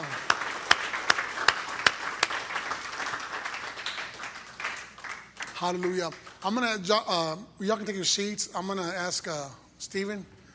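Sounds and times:
audience clapping hands in sustained applause: 0.0s - 6.4s
sharp rhythmic claps: 0.0s - 6.8s
speech: 5.6s - 10.4s.

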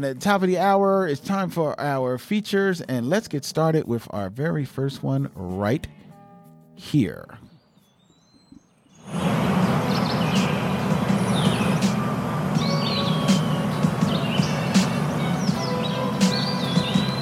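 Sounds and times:
speech: 0.0s - 6.0s, 6.8s - 7.4s
birds chirping and singing: 7.7s - 17.2s
steady low rumble: 9.1s - 17.2s.

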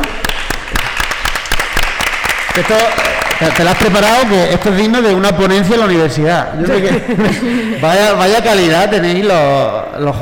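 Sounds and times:
audience applause: 0.0s - 5.4s
speech: 2.6s - 10.1s
laughter: 6.5s - 8.4s.

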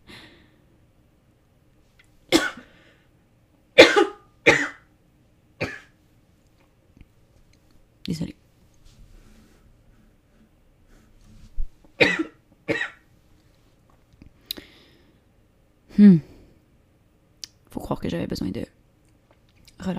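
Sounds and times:
harsh coughing fit: 2.3s - 2.7s, 3.8s - 4.8s, 5.6s - 5.9s, 12.0s - 13.0s
speech: 8.1s - 8.4s, 18.1s - 18.7s.

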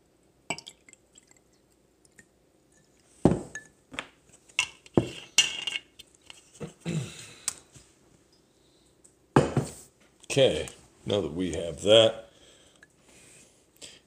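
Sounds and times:
re-oaked whiskey pouring into a glass: 0.5s - 3.1s
glassware clinking while being handled: 4.6s - 5.9s
speech: 10.3s - 12.2s.

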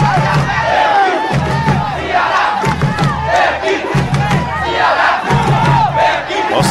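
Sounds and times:
large football stadium crowd chanting and cheering: 0.0s - 6.6s.

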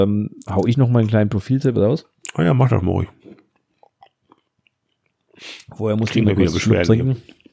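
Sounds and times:
speech: 0.0s - 3.2s, 5.4s - 7.4s
person chewing a mouthful of chocolate pieces: 3.2s - 5.4s.

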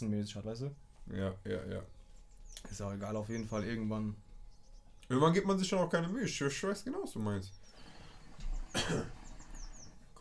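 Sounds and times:
speech: 0.0s - 4.3s, 5.1s - 7.7s, 8.8s - 9.2s
person coughing: 8.7s - 9.3s.

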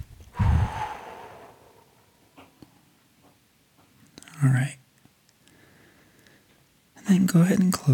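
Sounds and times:
slow exhale through mouth: 0.3s - 2.5s
speech: 4.4s - 4.8s, 7.1s - 7.9s.

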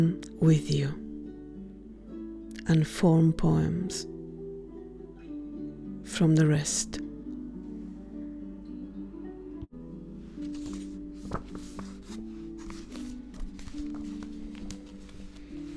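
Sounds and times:
speech: 0.0s - 1.0s, 2.7s - 4.2s, 6.1s - 7.1s
paper pages rustling and crinkling as handled: 10.3s - 15.7s.

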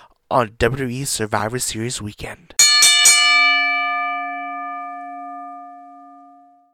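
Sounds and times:
speech: 0.3s - 2.6s
metal bell struck like a wrestling ring bell: 2.6s - 6.7s.

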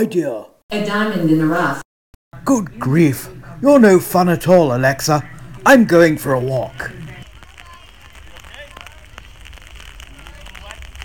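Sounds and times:
speech: 0.0s - 7.0s
steady rain pattering: 2.4s - 11.0s.

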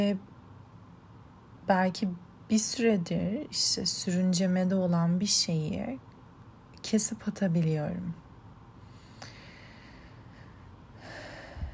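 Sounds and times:
speech: 0.0s - 0.3s, 1.7s - 6.1s, 6.8s - 8.2s
deep breath with sharp intake and breathy exhale: 8.8s - 11.7s.

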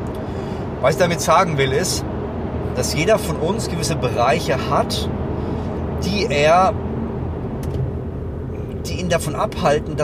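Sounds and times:
road rumble inside a car driving through a tunnel: 0.0s - 10.0s
speech: 0.8s - 2.1s, 2.8s - 5.2s, 6.0s - 6.8s, 8.9s - 10.0s.

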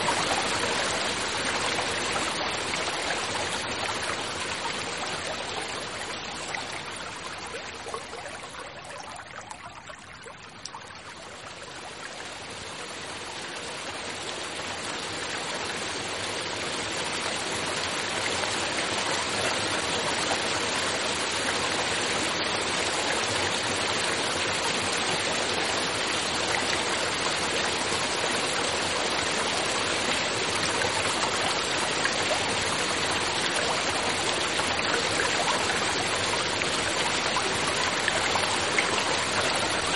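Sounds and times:
water rushing in a natural setting: 0.0s - 39.9s.

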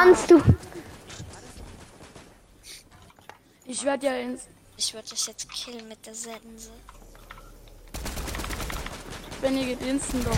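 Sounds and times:
speech: 0.0s - 0.8s, 3.7s - 7.0s, 9.4s - 10.3s
video game automatic gunfire: 0.8s - 2.6s, 7.9s - 10.3s.

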